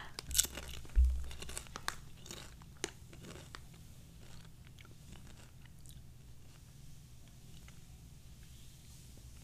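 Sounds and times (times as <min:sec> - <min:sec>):
chewing a crunchy paprika-flavoured snack: 0:00.1 - 0:06.6.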